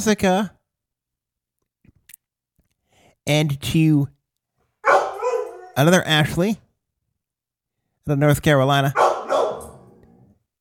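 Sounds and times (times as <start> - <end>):
speech: 0.0 - 0.6, 3.2 - 4.2, 5.8 - 6.6, 8.0 - 9.0
dog barking out the door: 4.8 - 5.8, 8.9 - 10.0.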